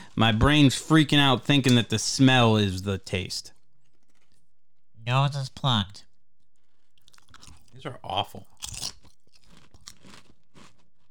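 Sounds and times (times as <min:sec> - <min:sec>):
speech: 0:00.2 - 0:03.6, 0:05.0 - 0:06.1, 0:07.8 - 0:08.9
person chewing a crunchy snack with nose plugged: 0:03.4 - 0:04.9, 0:06.0 - 0:11.0.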